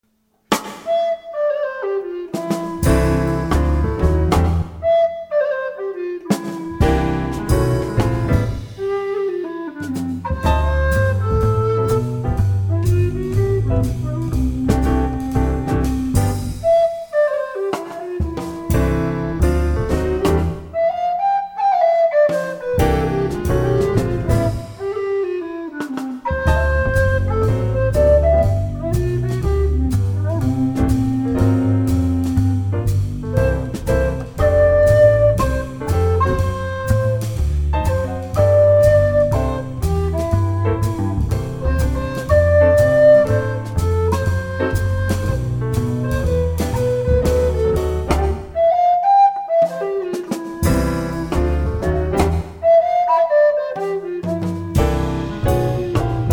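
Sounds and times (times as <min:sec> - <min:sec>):
tenor recorders: 0:00.8 - 0:03.9, 0:04.7 - 0:19.9, 0:20.6 - 0:56.3.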